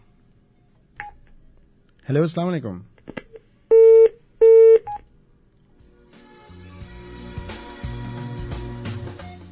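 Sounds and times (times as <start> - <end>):
speech: 2.1 - 2.9
telephone tones after a dropped call: 3.7 - 5.0.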